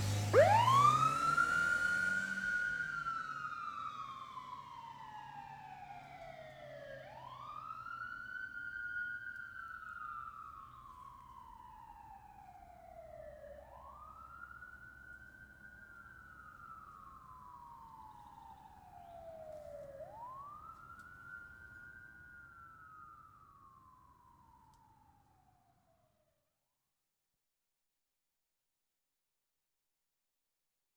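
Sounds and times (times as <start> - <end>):
police car siren wailing: 0.1 - 25.9.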